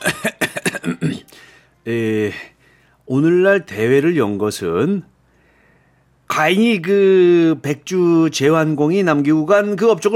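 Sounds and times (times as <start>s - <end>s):
man giving a deliberate voiced throat-clearing ahem: 0.0s - 1.3s
speech: 1.8s - 2.5s, 3.1s - 5.1s, 6.3s - 10.1s.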